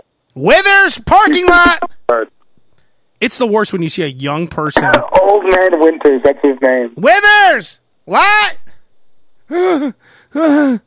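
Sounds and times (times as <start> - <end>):
speech: 0.4 - 2.4, 3.2 - 8.7, 9.5 - 10.8
man gasping for breath after pushing carts in a parking lot: 9.5 - 10.8.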